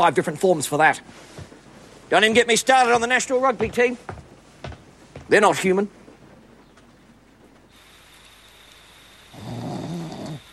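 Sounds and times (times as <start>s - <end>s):
speech: 0.0s - 1.5s, 2.1s - 4.2s, 5.3s - 6.0s
person snoring on a lower bunk: 9.3s - 10.5s.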